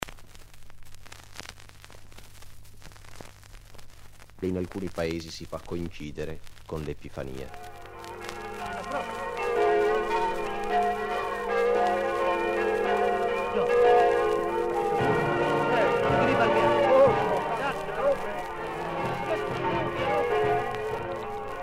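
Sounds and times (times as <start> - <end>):
speech: 4.4 - 7.7
small village church bells ringing on the right bank of the Torre river: 7.5 - 21.6
village brass band playing: 7.6 - 21.6
faint crowd murmur: 8.3 - 9.3, 15.0 - 21.4.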